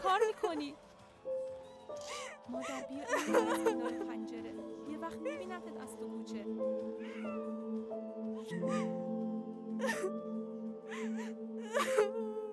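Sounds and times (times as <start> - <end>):
steady sustained tone: 0.0 - 12.5
speech: 0.1 - 0.9, 5.1 - 9.0
person wailing and sobbing: 2.0 - 4.2, 8.5 - 9.0, 9.8 - 10.1, 10.9 - 12.5
laughter: 2.6 - 4.4.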